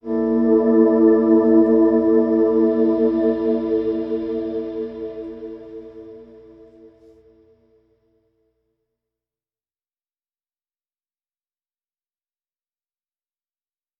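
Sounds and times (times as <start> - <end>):
soft musical sting: 0.0 - 7.2.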